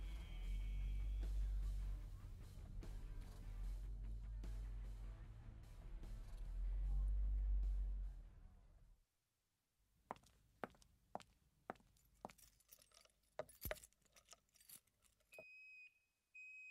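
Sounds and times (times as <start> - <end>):
low rumble: 0.1 - 8.9
set of keys jangling and clinking: 11.9 - 15.4.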